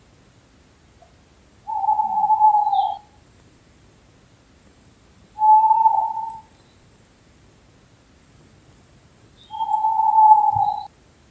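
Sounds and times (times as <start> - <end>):
owl hooting: 1.6 - 3.2, 5.4 - 6.5, 9.4 - 10.9.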